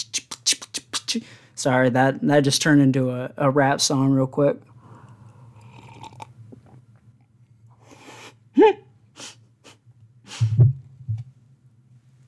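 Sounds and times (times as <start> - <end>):
speech: 1.1 - 4.7
loud slurp of coffee: 5.5 - 6.8.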